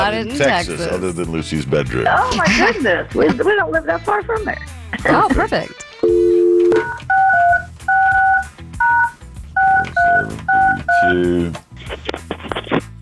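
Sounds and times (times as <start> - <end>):
speech: 0.1 - 5.8, 11.1 - 11.6
telephone keypad dialing tones: 6.0 - 11.1.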